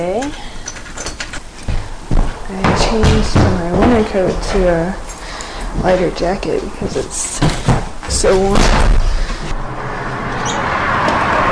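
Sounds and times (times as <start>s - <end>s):
speech: 0.0s - 0.5s, 2.5s - 5.0s, 5.8s - 9.1s
cars passing on a busy street: 0.0s - 11.5s
faint high squeaks: 10.3s - 10.7s.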